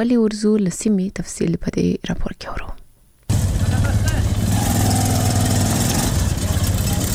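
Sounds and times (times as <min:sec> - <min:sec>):
speech: 0:00.0 - 0:02.8
Zaranj motorcycle rickshaw engine idling in Kandahar: 0:03.3 - 0:07.1.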